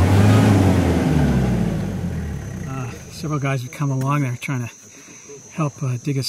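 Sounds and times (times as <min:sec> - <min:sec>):
truck engine revving while stuck in deep sand on a forest road: 0:00.0 - 0:03.4
speech: 0:03.2 - 0:04.8, 0:05.6 - 0:06.2.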